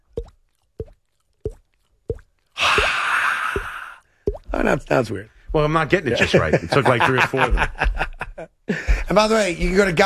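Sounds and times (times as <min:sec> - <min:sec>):
voice on stage imitating water dripping from a pipe with mouth plops: 0:00.0 - 0:04.8
speech: 0:04.6 - 0:08.0, 0:08.7 - 0:10.0
laughter: 0:05.9 - 0:10.0.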